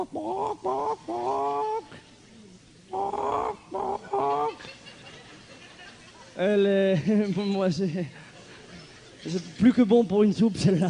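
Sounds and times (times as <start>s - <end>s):
speech: 0.0s - 2.0s, 6.4s - 8.3s, 9.2s - 10.8s
voice imitating a clucking hen: 0.0s - 2.0s, 2.9s - 4.7s
laughter: 3.0s - 6.4s.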